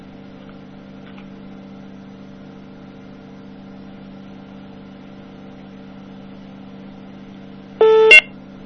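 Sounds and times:
call-waiting caller ID beep: 7.8s - 8.3s
caller ID buzzy data chirp: 7.8s - 8.3s
faint telephone-line hum: 7.8s - 8.4s.

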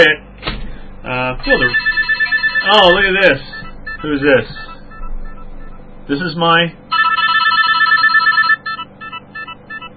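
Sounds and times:
speech: 0.0s - 0.2s, 1.0s - 2.0s, 2.6s - 4.6s, 6.1s - 6.8s
Nokia mobile phone ringtone: 1.4s - 5.8s, 6.9s - 9.9s.

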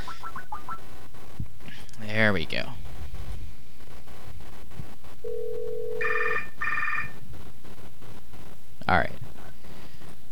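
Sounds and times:
speech: 2.2s - 2.8s, 8.9s - 9.1s
phone line tone humming: 5.2s - 7.2s
short bright electronic ring bursts on an outgoing Skype call through a handset: 5.3s - 7.2s.

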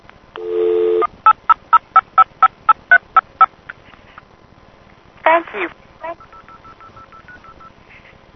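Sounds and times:
steady hiss of telephone line noise: 0.0s - 8.3s
touch-tone dialing on a customer-owned coin payphone: 6.2s - 7.7s.

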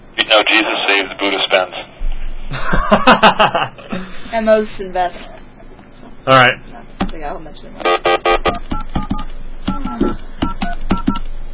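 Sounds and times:
speech: 0.3s - 1.9s, 2.5s - 5.4s, 6.3s - 8.6s
laughter: 2.5s - 4.2s
touch-tone telephone dialing beeps: 8.8s - 11.2s.

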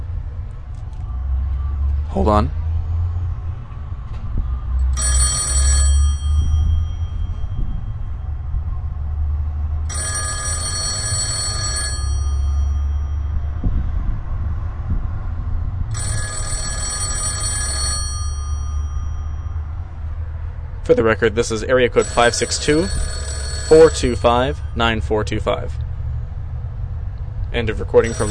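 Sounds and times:
steady low rumble of traffic or machinery: 0.0s - 28.2s
speech: 2.1s - 2.6s, 20.9s - 25.8s, 27.5s - 28.2s
old GTE Automatic Electric payphone ringing in Long Beach California: 4.9s - 8.4s, 9.9s - 13.6s, 15.9s - 20.0s, 21.8s - 25.7s, 27.6s - 28.2s.

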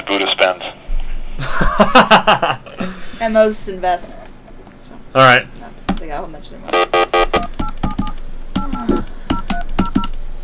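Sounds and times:
speech: 0.1s - 0.8s, 1.4s - 4.3s, 5.2s - 7.1s
laughter: 1.4s - 3.0s
touch-tone telephone dialing a number with DTMF tones: 7.6s - 10.1s.

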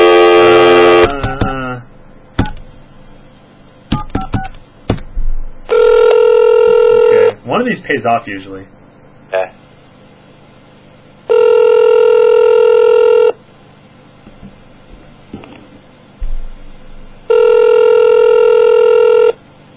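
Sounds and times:
ringback tones of an outgoing phone call: 0.0s - 1.1s, 5.7s - 7.3s, 11.3s - 13.4s, 17.3s - 19.4s
speech: 7.6s - 9.5s
low thump: 16.2s - 17.0s.

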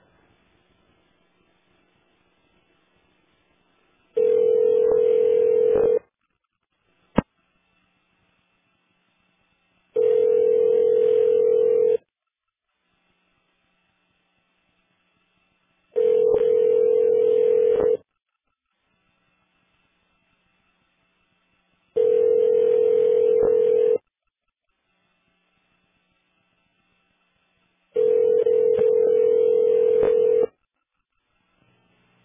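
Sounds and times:
telephone ringback tone of a call connecting: 4.2s - 6.0s, 10.0s - 12.0s, 16.0s - 18.0s, 22.0s - 24.0s, 28.0s - 30.6s.

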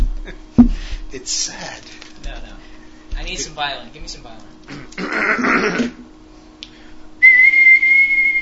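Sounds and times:
speech: 1.1s - 6.0s
person whistling a sad tune: 7.2s - 8.4s.

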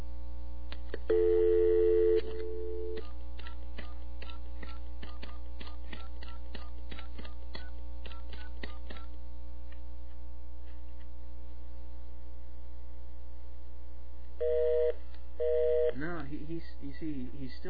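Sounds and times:
constant low electrical hum: 0.0s - 17.6s
telephone dial tone: 1.1s - 3.0s
faint telephone line clicks and blips: 2.2s - 10.2s
speech: 16.7s - 17.6s.

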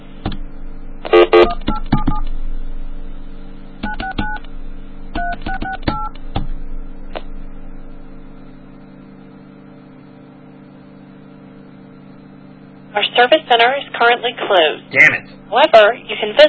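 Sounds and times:
steady low hum: 0.0s - 16.4s
touch-tone telephone keypad tones dialing a number: 1.2s - 2.2s
speech: 13.2s - 16.4s.

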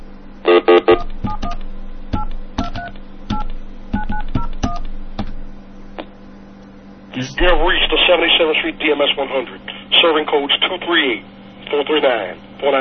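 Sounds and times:
low steady hum: 0.0s - 12.7s
telephone keypad tones from dialing a number: 2.2s - 4.8s
speech: 7.2s - 12.7s.

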